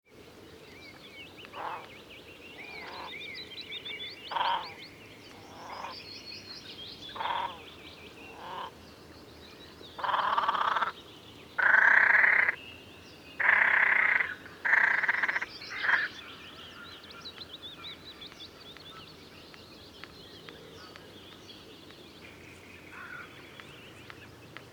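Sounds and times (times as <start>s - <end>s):
great crested grebe calling: 1.6s - 1.9s, 2.6s - 3.2s, 4.3s - 4.8s, 5.4s - 6.0s, 7.1s - 7.7s, 8.3s - 8.8s, 10.0s - 11.0s, 11.6s - 12.6s, 13.4s - 17.0s.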